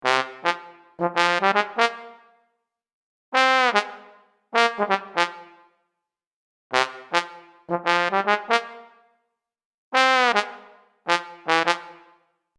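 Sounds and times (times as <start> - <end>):
synthesizer solo trombone patch demo: 0.0 - 2.2, 3.4 - 5.6, 6.8 - 9.0, 10.0 - 12.2.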